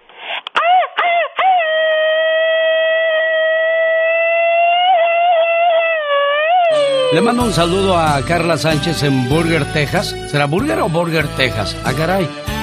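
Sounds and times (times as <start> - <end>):
high-pitched machine-gun grito yell: 0.6 - 7.8
speech: 7.1 - 12.6.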